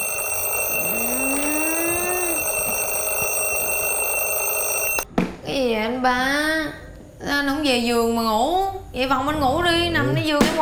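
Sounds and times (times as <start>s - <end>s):
alarm clock ringing with a high electronic tone: 0.0s - 5.1s
speech: 5.6s - 10.6s.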